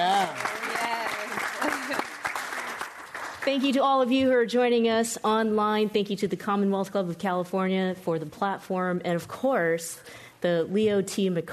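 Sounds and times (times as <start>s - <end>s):
room full of people applauding: 0.0s - 3.5s
speech: 3.5s - 11.5s.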